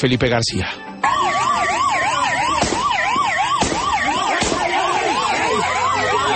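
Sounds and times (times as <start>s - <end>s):
speech: 0.0s - 1.2s
loud street traffic noise: 0.5s - 6.3s
police sirens wailing and yelping: 1.0s - 6.3s
sharp sudden bangs during a shootout: 1.8s - 5.2s
laughter: 4.0s - 6.3s.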